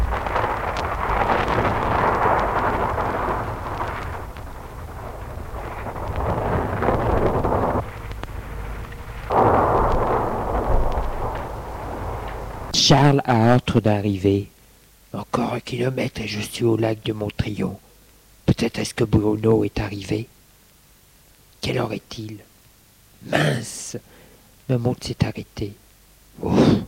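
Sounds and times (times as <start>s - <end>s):
low thunder rumbling: 0.0s - 13.1s
dense rushing rain over a flooded road: 0.0s - 13.6s
speech: 12.9s - 14.5s, 15.3s - 17.8s, 18.6s - 20.4s, 21.6s - 22.5s, 23.2s - 24.1s, 24.7s - 25.8s.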